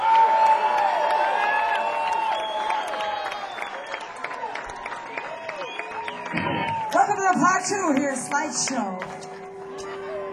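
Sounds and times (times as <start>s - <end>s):
audience whooping: 0.0s - 8.2s
audience clapping for a band: 0.0s - 9.8s
speech: 6.3s - 9.3s.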